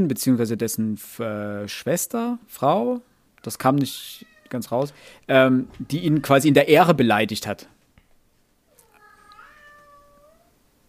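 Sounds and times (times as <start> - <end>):
speech: 0.0 - 7.8
cat whining meow: 4.1 - 4.6, 8.7 - 10.6.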